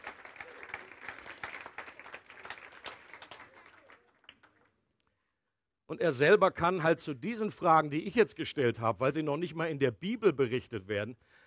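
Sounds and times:
crowd applauding: 0:00.0 - 0:04.6
speech: 0:05.9 - 0:11.4.

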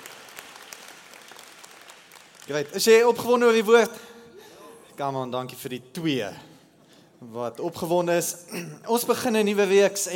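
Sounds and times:
crowd applauding: 0:00.0 - 0:02.8
speech: 0:02.5 - 0:04.1, 0:05.0 - 0:06.5, 0:07.2 - 0:10.1.

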